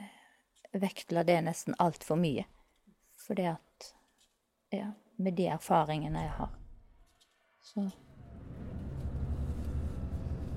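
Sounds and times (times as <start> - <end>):
speech: 0.7 - 2.6, 3.2 - 4.0, 4.7 - 6.6, 7.6 - 8.1
bus engine rumble and road drone in an enclosed vehicle cabin: 7.9 - 10.5.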